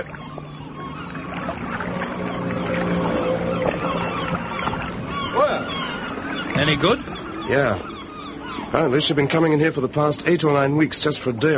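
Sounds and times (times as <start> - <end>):
small boat engine drone coming ashore: 0.0 - 11.5
steady wash of water: 0.0 - 11.5
speech: 6.6 - 7.9, 8.7 - 11.5.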